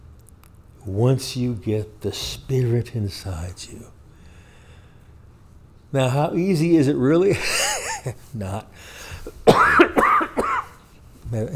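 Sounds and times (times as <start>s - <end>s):
speech: 0.8s - 4.0s, 5.9s - 9.9s, 11.3s - 11.5s
dry raspy coughs from a dry throat: 7.4s - 8.1s, 9.2s - 10.8s.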